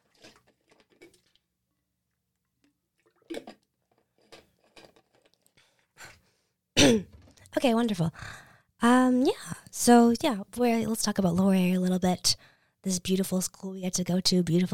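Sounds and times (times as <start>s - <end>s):
person gulping water: 0.1s - 1.4s, 2.6s - 5.6s
speech: 6.9s - 14.7s
person breathing: 8.2s - 8.7s.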